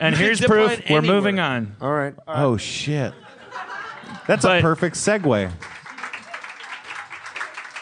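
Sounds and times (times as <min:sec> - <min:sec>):
speech: 0:00.0 - 0:03.4, 0:04.3 - 0:05.7
laughter: 0:03.0 - 0:07.7
live audience applauding: 0:04.0 - 0:07.8.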